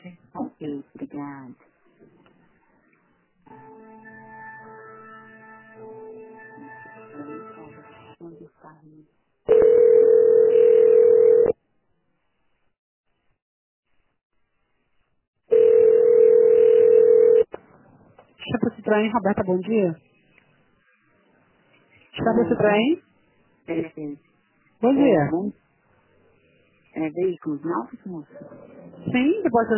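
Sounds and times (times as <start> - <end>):
speech: 0.6 - 1.7, 18.9 - 20.1, 22.2 - 23.0, 23.7 - 25.6, 27.0 - 29.7
telephone ringback tone while a call is transferred: 9.5 - 11.6, 15.5 - 17.5.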